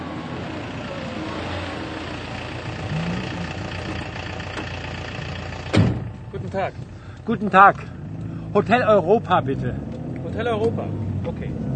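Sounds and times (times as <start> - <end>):
taxi engine idling: 0.3 - 9.4
speech: 6.6 - 8.0, 8.5 - 11.7.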